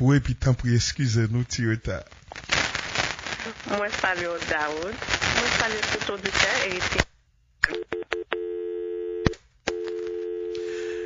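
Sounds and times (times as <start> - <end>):
speech: 0.0 - 2.4, 3.4 - 7.0
telephone beeps set off by accident on a call: 7.8 - 11.0.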